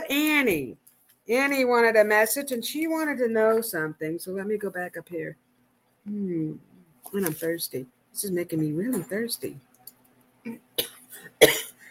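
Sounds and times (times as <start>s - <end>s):
speech: 0.1s - 5.4s, 6.0s - 9.7s, 10.4s - 10.7s
person coughing after choking on saliva: 10.5s - 11.8s.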